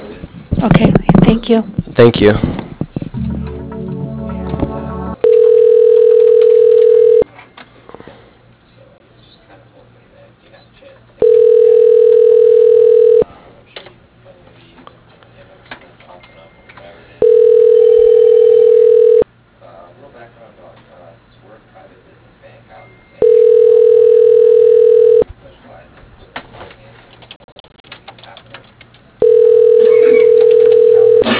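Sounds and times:
speech: 0:00.6 - 0:02.6
quiet phone line noise: 0:05.2 - 0:07.3, 0:11.2 - 0:13.2, 0:17.2 - 0:19.3, 0:23.2 - 0:25.3, 0:29.2 - 0:31.3
telephone tones as a call is transferred to voicemail: 0:05.2 - 0:07.3, 0:11.2 - 0:13.2, 0:17.2 - 0:19.3, 0:23.2 - 0:25.3, 0:29.2 - 0:31.3.

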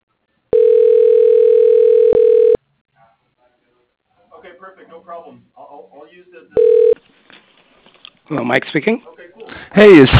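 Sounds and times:
telephone dial tone: 0:00.5 - 0:02.6, 0:06.6 - 0:07.0
speech: 0:05.0 - 0:07.0, 0:08.3 - 0:10.1.

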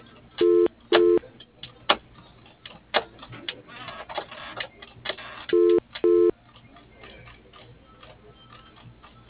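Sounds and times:
short phone line tones and clicks: 0:00.4 - 0:01.2, 0:05.2 - 0:06.3
telephone number being dialled: 0:00.4 - 0:01.2, 0:05.5 - 0:06.3
phone line double ring tone: 0:05.6 - 0:06.3.

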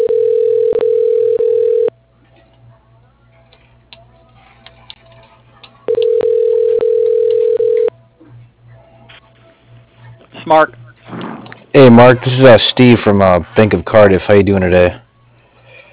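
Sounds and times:
telephone line ring tones to an office extension: 0:00.0 - 0:01.9, 0:05.9 - 0:07.9
speech: 0:10.5 - 0:10.8, 0:11.7 - 0:15.0.

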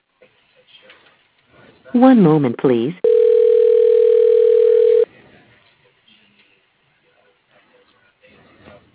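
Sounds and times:
speech: 0:01.9 - 0:03.0
telephone keypad tone dialing an extension: 0:03.0 - 0:05.0.

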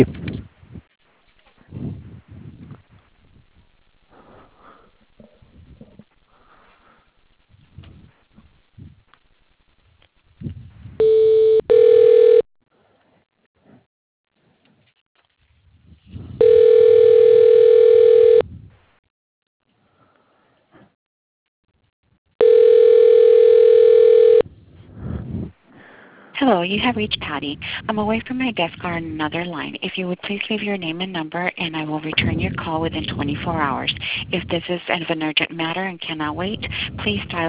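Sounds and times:
speech: 0:00.0 - 0:00.2, 0:26.7 - 0:37.4
telephone ringback tone during bank call transfer: 0:11.0 - 0:12.5, 0:16.4 - 0:18.4, 0:22.4 - 0:24.4.

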